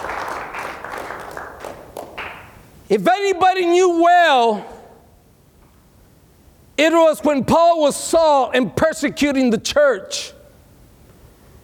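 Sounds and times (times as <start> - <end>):
congregation clapping in church: 0.0 - 2.7
speech: 2.9 - 4.7, 6.8 - 10.4.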